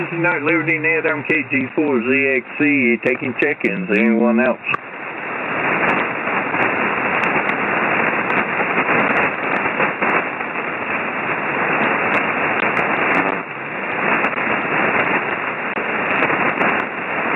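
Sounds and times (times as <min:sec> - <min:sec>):
speech: 0:00.0 - 0:04.8
band-limited radio static hiss from distant storms: 0:00.0 - 0:17.3
sharp irregular crackling pops: 0:00.0 - 0:17.3.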